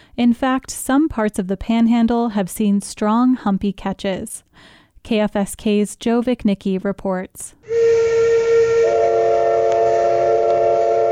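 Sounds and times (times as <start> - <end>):
speech: 0.2 - 8.0
cannery steam whistle blowing in southeast Alaska: 7.6 - 11.1.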